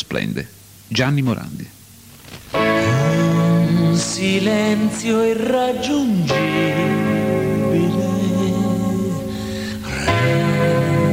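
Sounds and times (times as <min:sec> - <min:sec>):
speech: 0:00.1 - 0:01.8, 0:04.0 - 0:08.2
male voice singing an Italian pop love song: 0:02.8 - 0:11.1.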